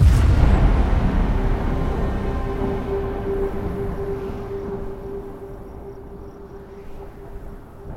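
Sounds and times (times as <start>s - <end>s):
splash screen animation start sound: 0.0s - 5.5s.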